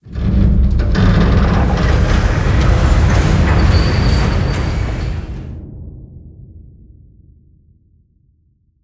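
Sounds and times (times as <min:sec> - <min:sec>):
floor elevator gears starting: 0:00.1 - 0:05.6.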